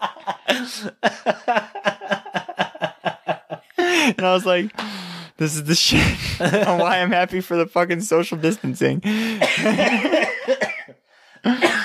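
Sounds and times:
laughter: 0.0s - 4.7s, 5.8s - 7.1s, 9.4s - 10.6s
speech: 0.5s - 1.8s, 4.2s - 10.3s
person coughing up phlegm: 9.4s - 11.8s.

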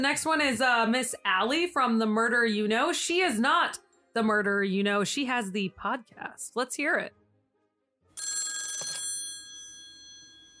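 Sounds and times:
speech: 0.0s - 7.2s
telephone bell ringing for an incoming caller: 8.2s - 10.5s.

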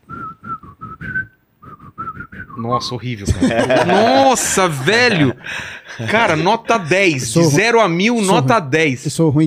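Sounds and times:
person whistling short bright notes: 0.0s - 2.8s
speech: 2.6s - 9.4s
laughter: 3.2s - 7.6s.

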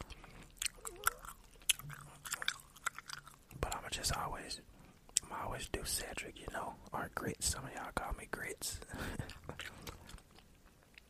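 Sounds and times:
wet chewing of gum: 0.0s - 4.3s, 9.0s - 11.0s
speech: 5.6s - 9.6s.

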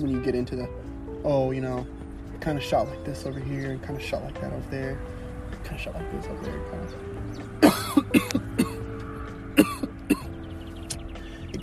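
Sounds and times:
speech: 0.0s - 8.3s
person coughing: 7.6s - 8.9s, 9.6s - 10.3s.

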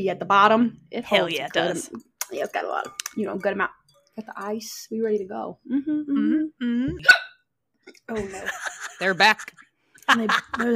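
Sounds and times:
speech: 0.0s - 7.2s, 7.9s - 10.7s
low drawn-out throaty burp: 6.1s - 7.4s
sharp hiccup-like gulp: 6.2s - 8.0s
laughter: 8.1s - 10.7s.

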